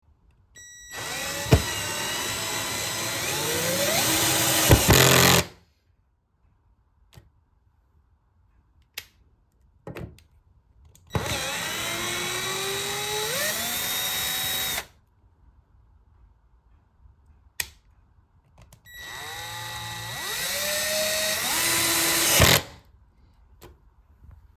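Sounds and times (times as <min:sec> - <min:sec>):
screwdriver turning a screw: 0:00.9 - 0:05.5, 0:11.1 - 0:14.9, 0:18.9 - 0:22.8.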